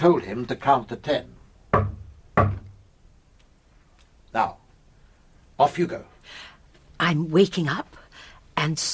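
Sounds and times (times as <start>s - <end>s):
speech: 0.0s - 2.5s, 4.4s - 4.6s, 5.6s - 8.0s, 8.6s - 8.9s
heavy banging on a communicating door: 1.7s - 2.8s.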